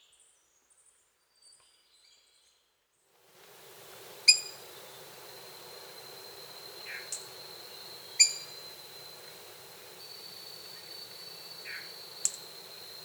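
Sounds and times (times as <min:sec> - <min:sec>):
background hiss: 0:03.2 - 0:13.0
bird song in Costa Rican cloud forest: 0:03.5 - 0:13.0.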